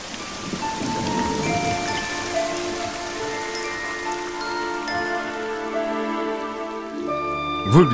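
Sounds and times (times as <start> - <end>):
heavy raindrops pattering on a surface after rain: 0.0 - 7.9
speech: 7.7 - 7.9.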